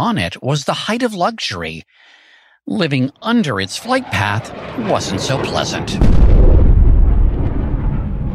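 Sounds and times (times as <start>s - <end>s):
speech: 0.0s - 6.6s
Concorde supersonic airliner sonic boom: 5.4s - 8.3s.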